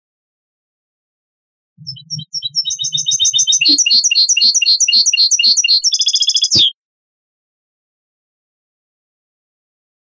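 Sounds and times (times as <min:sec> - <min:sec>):
European goldfinch song: 0:01.8 - 0:06.8.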